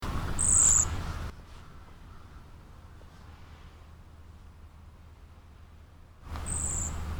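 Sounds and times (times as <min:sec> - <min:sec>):
cedar waxwing calling: 0:00.2 - 0:02.5, 0:06.3 - 0:07.1.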